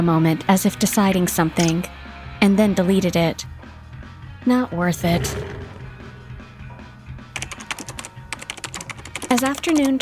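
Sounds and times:
speech: 0:00.0 - 0:03.5, 0:04.4 - 0:05.6, 0:09.3 - 0:10.0
typing on a computer keyboard: 0:07.4 - 0:10.0.

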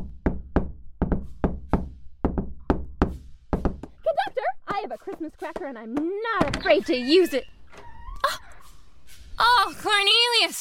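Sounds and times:
firm knocks on a wooden door: 0:00.0 - 0:04.0, 0:04.7 - 0:06.8
speech: 0:04.9 - 0:07.6, 0:09.6 - 0:10.5.

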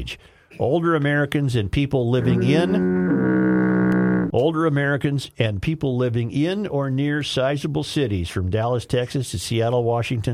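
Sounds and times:
speech: 0:00.0 - 0:03.3, 0:04.3 - 0:10.3
voice mimicking a foghorn: 0:02.2 - 0:04.4.

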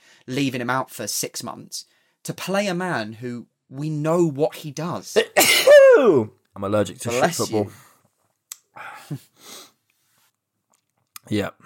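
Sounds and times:
speech: 0:00.3 - 0:07.8, 0:08.8 - 0:09.6, 0:11.3 - 0:11.6
person sneezing: 0:05.2 - 0:06.1.

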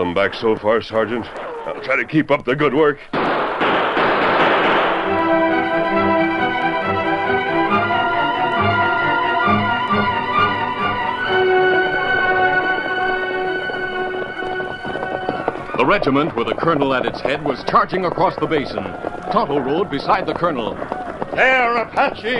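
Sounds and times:
speech: 0:00.0 - 0:03.7, 0:15.9 - 0:22.3
rifle gunfight sound effect: 0:03.1 - 0:05.4
sustained musical tones: 0:05.0 - 0:16.1.

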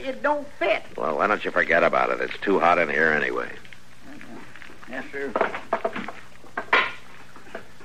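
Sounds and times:
speech: 0:00.0 - 0:03.6, 0:04.9 - 0:06.0
stick of wood banging on a stove: 0:05.3 - 0:07.6.

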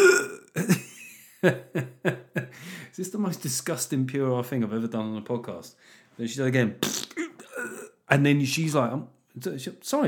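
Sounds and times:
person imitating dry heaving with guttural gagging bursts: 0:00.0 - 0:00.7, 0:06.8 - 0:08.0
speech: 0:01.4 - 0:02.2, 0:03.0 - 0:07.0, 0:08.1 - 0:10.0.

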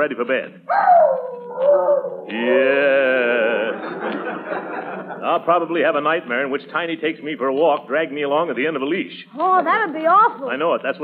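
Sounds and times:
speech: 0:00.0 - 0:03.2, 0:05.2 - 0:11.0
dog howling: 0:00.7 - 0:02.8
laughter: 0:02.3 - 0:05.7.

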